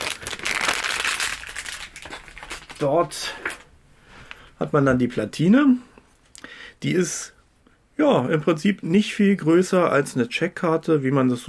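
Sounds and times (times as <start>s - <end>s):
plastic bag holding a circuit board crinkling as it is opened: 0.0s - 3.7s
speech: 2.8s - 3.5s, 4.6s - 5.9s, 6.8s - 7.4s, 8.0s - 11.4s.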